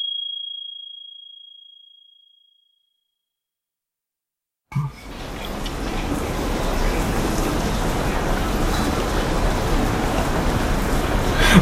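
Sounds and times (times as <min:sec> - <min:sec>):
rain falling: 0:04.9 - 0:11.5.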